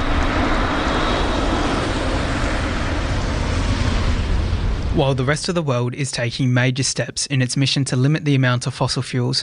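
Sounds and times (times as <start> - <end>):
electric car road and tyre noise: 0.0 - 5.2
speech: 5.0 - 9.4.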